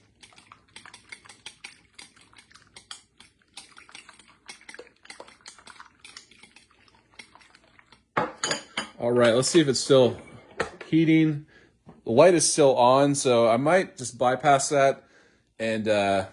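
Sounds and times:
omelet eggs being mixed with seasoning: 0.0s - 10.7s
speech: 9.0s - 10.3s, 10.9s - 11.5s, 12.1s - 16.3s.

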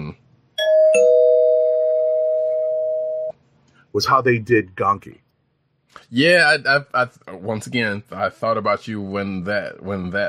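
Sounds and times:
two-tone bell chime: 0.6s - 3.3s
speech: 3.9s - 5.2s, 6.1s - 10.2s.

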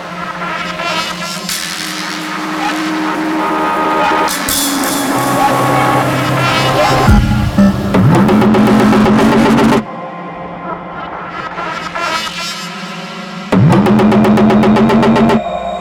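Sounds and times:
loud dense electronic music track: 1.5s - 15.7s
repeating heavy bass tone bending and sliding downward in pitch: 4.6s - 9.8s.

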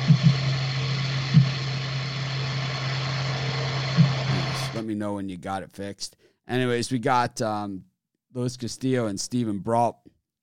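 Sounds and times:
soft low thumps: 0.0s - 0.6s
loud mechanical rumble with low droning hum: 0.0s - 4.8s
speech: 4.8s - 10.4s.

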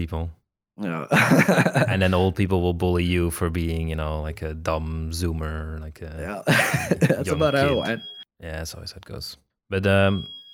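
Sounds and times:
speech: 0.0s - 10.4s
laughter: 1.0s - 2.0s, 6.3s - 8.0s
thin high-pitched electronic alarm tone: 7.0s - 8.3s, 10.0s - 10.5s.

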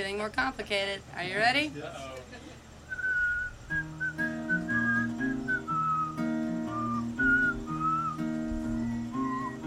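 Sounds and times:
speech: 0.0s - 2.4s
audience members whistling a melody along to a live song: 2.9s - 9.6s.

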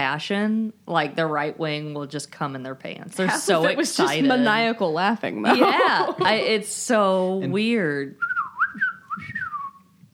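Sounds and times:
speech: 0.0s - 8.3s
person whistling a falling tone imitating a falling torpedo: 8.2s - 9.8s.

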